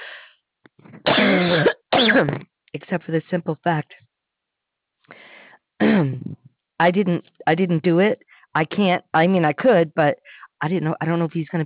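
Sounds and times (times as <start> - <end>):
person coughing from a tickle in the throat: 0.9 - 2.4, 5.8 - 6.4
speech: 1.4 - 4.0, 6.0 - 11.6
faint throat sounds: 5.8 - 6.5.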